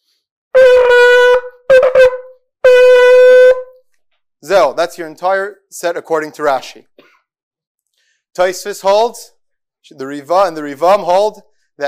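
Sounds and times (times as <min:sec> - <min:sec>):
shofar sounding tekiah truah tekiah blasts: 0:00.5 - 0:03.8
speech: 0:04.5 - 0:07.0, 0:08.4 - 0:11.8.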